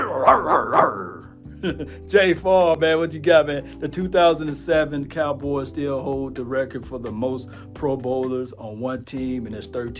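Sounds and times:
dog barking with sharp yaps: 0:00.0 - 0:01.2
speech: 0:00.2 - 0:09.9.

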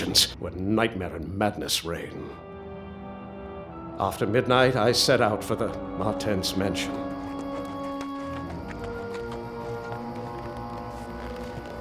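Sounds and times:
speech: 0:00.2 - 0:02.5, 0:04.0 - 0:07.1
horse hooves clip-clopping: 0:06.8 - 0:11.7.

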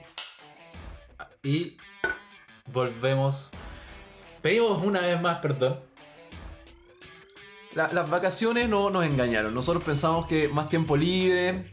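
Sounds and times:
glasses clinking in a toast: 0:00.1 - 0:00.5, 0:02.0 - 0:02.3
speech: 0:01.4 - 0:02.0, 0:02.7 - 0:03.6, 0:04.4 - 0:05.9, 0:07.7 - 0:11.7.

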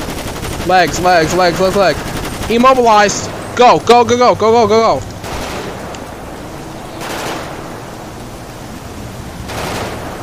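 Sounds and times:
video game gunfire in a police patrol game: 0:00.0 - 0:03.4, 0:05.2 - 0:06.0, 0:06.9 - 0:07.8, 0:09.4 - 0:10.2
speech: 0:00.7 - 0:05.1.

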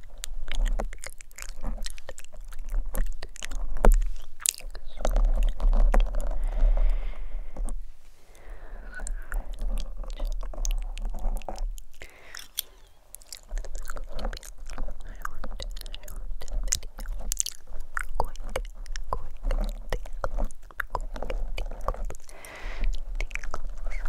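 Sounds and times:
scratching and plucking right against a microphone: 0:00.0 - 0:24.0.

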